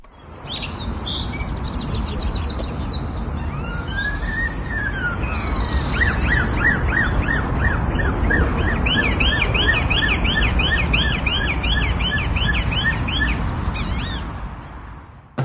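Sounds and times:
blackbird sharp clicking chirps: 0:00.0 - 0:01.0
male blackbird mimicking a car siren: 0:00.2 - 0:15.3.

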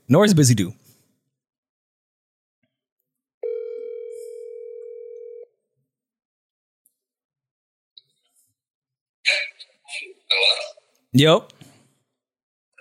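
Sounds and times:
speech: 0:00.1 - 0:00.8, 0:11.1 - 0:11.6
electronic ringback tone on an outgoing phone call: 0:03.4 - 0:05.6.

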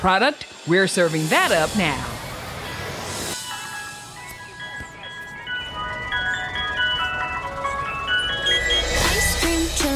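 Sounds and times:
speech: 0:00.0 - 0:02.1
ice cream truck jingle with music-box melody: 0:03.2 - 0:09.9.

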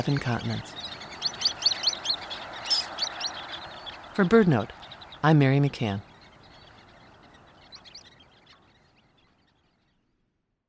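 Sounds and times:
speech: 0:00.0 - 0:00.9, 0:04.2 - 0:06.1
Sanderling high kip calls: 0:00.0 - 0:10.1.

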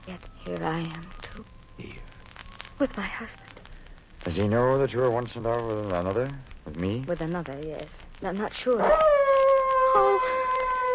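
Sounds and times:
speech: 0:00.1 - 0:01.2, 0:02.8 - 0:03.5, 0:04.2 - 0:09.1, 0:10.0 - 0:10.4
dogs howling: 0:08.8 - 0:10.9.

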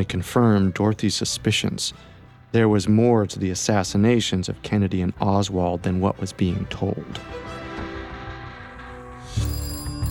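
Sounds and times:
speech: 0:00.0 - 0:07.6
telephone ringing with electronic tone: 0:09.2 - 0:10.0.

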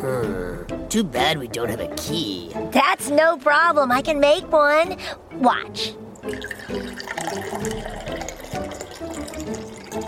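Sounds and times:
speech: 0:00.0 - 0:07.8
water pouring from a bottle into a keyhole: 0:06.2 - 0:10.0.

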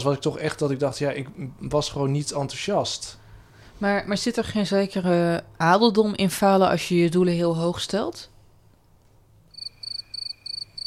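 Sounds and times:
speech: 0:00.0 - 0:03.2, 0:03.8 - 0:08.3
crickets chirping sound effect: 0:09.5 - 0:10.8.

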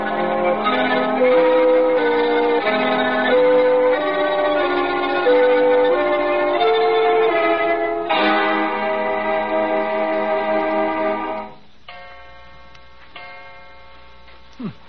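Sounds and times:
clock striking two with rich ringing chimes: 0:00.0 - 0:14.2.

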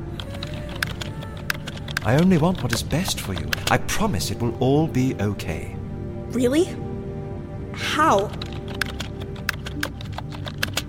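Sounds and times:
clicky typing on an old computer keyboard: 0:00.2 - 0:03.8, 0:08.3 - 0:10.8
speech: 0:02.0 - 0:06.9, 0:07.8 - 0:08.6.

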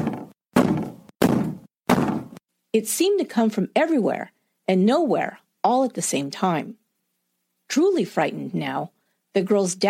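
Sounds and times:
fist pounding on a door: 0:00.0 - 0:02.4
speech: 0:02.8 - 0:06.8, 0:07.7 - 0:09.8.

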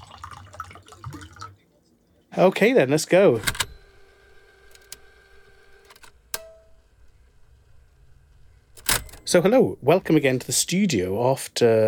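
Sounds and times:
water pouring into a glass: 0:00.0 - 0:01.6
speech: 0:02.4 - 0:03.6, 0:09.3 - 0:11.8.

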